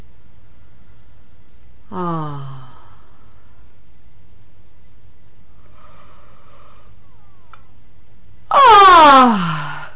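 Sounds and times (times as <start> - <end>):
person yawning as a voice exercise: 1.9 - 3.0, 8.5 - 9.9.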